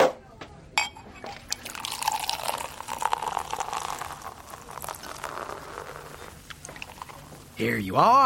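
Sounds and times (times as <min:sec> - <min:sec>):
glass clink: 0:00.8 - 0:07.0
champagne pouring into two glasses: 0:01.4 - 0:07.7
speech: 0:07.6 - 0:08.2.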